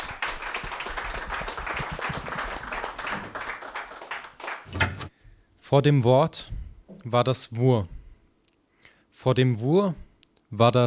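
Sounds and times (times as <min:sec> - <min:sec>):
audience applauding for a speaker: 0:00.0 - 0:04.7
speech: 0:05.7 - 0:08.0, 0:09.2 - 0:10.8.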